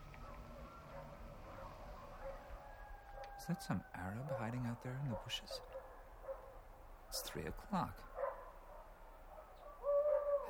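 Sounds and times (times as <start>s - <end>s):
speech: 3.4s - 5.7s, 7.1s - 8.2s
owl hooting: 9.6s - 10.4s.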